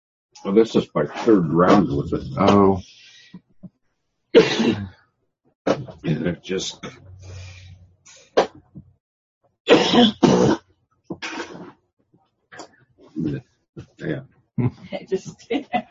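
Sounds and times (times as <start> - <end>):
speech: 0.4 - 3.5, 4.3 - 5.0, 5.7 - 7.1, 9.7 - 11.4, 13.2 - 15.8
person clearing throat: 4.4 - 4.9, 6.0 - 7.0, 9.7 - 10.6
person in a coughing fit: 4.4 - 4.9, 9.7 - 10.6.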